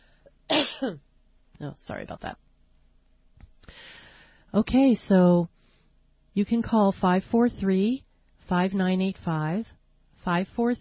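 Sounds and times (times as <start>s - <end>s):
person clearing throat: 0.5s - 1.0s
speech: 0.8s - 2.4s, 4.5s - 5.6s, 6.4s - 10.7s.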